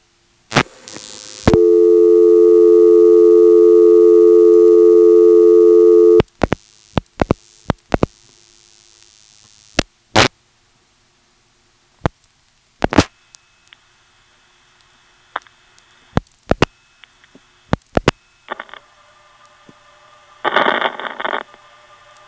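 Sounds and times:
telephone line noise on a tandem trunk with a 2600 Hz tone: 1.0 - 6.3, 18.4 - 18.8
loud steady dual-pitch telephone reorder tone: 1.5 - 6.2
short sharp clicks and bursts: 6.1 - 10.3, 12.0 - 13.8, 14.8 - 19.8, 20.4 - 22.2.

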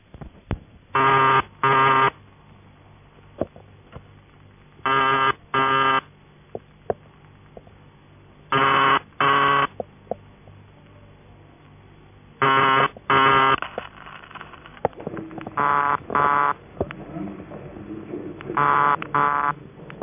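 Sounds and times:
faint hiss: 0.0 - 20.0
buzzy telephone ringing tone from a vibrating buzzer relay in a manual exchange: 1.0 - 2.2, 4.9 - 6.1, 8.5 - 9.7, 12.4 - 14.7, 15.5 - 16.6, 18.5 - 19.6.

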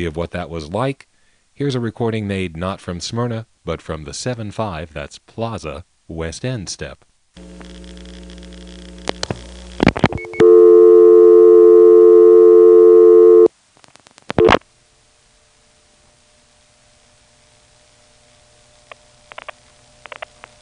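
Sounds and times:
speech: 0.0 - 8.4
dialing crosstalk on a telephone trunk line: 7.4 - 13.5, 14.3 - 14.6
steady telephone tone on a trunk line: 10.1 - 13.5, 14.4 - 14.6.

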